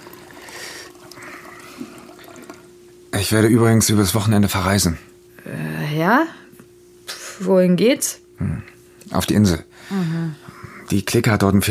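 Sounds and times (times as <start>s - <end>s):
water pouring into a glass: 0.0s - 2.7s
speech: 3.2s - 6.4s, 7.4s - 11.7s.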